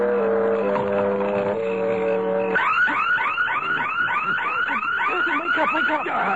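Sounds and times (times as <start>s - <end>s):
burglar alarm ringing: 0.1s - 6.3s.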